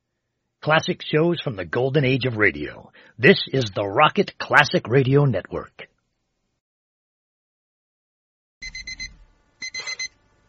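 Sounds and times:
speech: 0:00.6 - 0:05.9
digital watch alarm beeping: 0:08.6 - 0:10.2.

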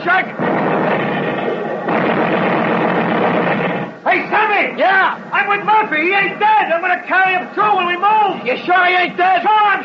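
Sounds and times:
naval artillery barrage rumbling: 0:00.2 - 0:04.0
speech: 0:05.0 - 0:09.8.

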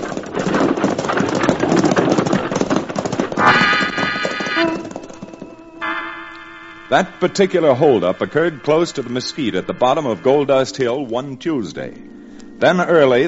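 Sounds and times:
horse team hooves and stagecoach wheels clattering: 0:00.0 - 0:06.1, 0:06.9 - 0:11.7
sustained high tones: 0:03.4 - 0:13.2
speech: 0:06.9 - 0:13.2.

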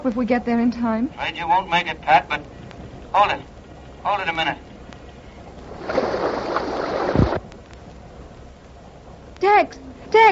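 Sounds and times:
speech: 0:00.0 - 0:04.7, 0:09.4 - 0:10.3
rushing water: 0:01.4 - 0:09.3.

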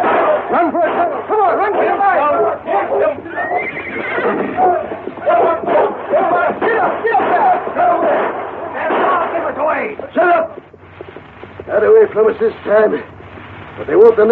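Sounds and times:
horses neighing and whinnying: 0:00.0 - 0:09.4
indistinct voices: 0:00.0 - 0:13.2
speech: 0:12.2 - 0:13.1, 0:13.8 - 0:14.3.

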